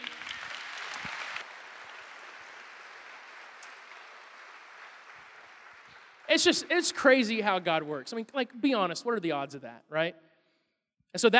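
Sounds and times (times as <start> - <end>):
audience applause: 0.0 - 7.9
speech: 6.3 - 10.3, 11.1 - 11.3.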